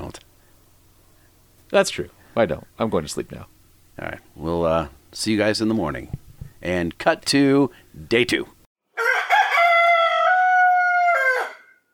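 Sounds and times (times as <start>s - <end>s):
speech: 1.7s - 8.6s
rooster crowing: 8.9s - 11.9s.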